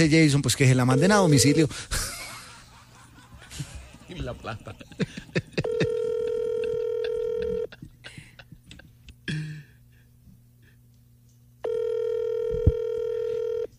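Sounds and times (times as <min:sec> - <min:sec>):
speech: 0:00.0 - 0:02.2, 0:03.6 - 0:05.9
outgoing call ringback tone: 0:00.9 - 0:01.7, 0:05.6 - 0:07.7, 0:11.6 - 0:13.7
laughter: 0:01.9 - 0:09.2.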